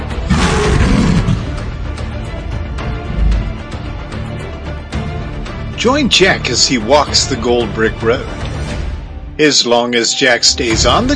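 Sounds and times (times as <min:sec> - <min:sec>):
low rumbling background: 0:00.1 - 0:05.7
lion roaring: 0:00.2 - 0:01.7
speech: 0:05.8 - 0:08.4, 0:09.4 - 0:11.1.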